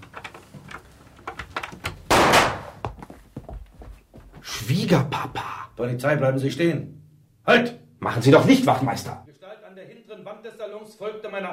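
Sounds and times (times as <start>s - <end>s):
door being unlocked inside a building: 0.0s - 2.1s
loud broad thud: 2.1s - 2.8s
speech: 4.8s - 9.3s, 10.8s - 11.5s.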